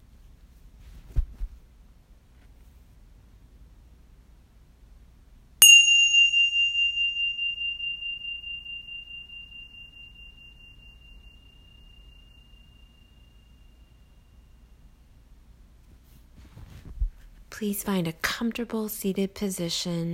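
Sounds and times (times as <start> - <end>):
gentle meditation chime struck to signal the beginning of a meditation: 5.6 - 15.1
speech: 17.6 - 20.1.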